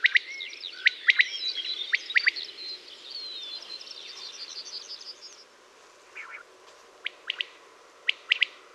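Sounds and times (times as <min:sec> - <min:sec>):
common quail three-part calls: 0:00.0 - 0:02.5, 0:06.2 - 0:08.6
bird warbling song: 0:00.0 - 0:05.5, 0:06.1 - 0:08.6.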